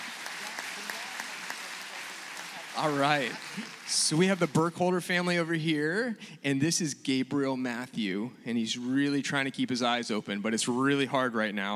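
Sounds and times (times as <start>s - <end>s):
church audience applauding: 0.0s - 5.5s
speech: 2.8s - 11.7s.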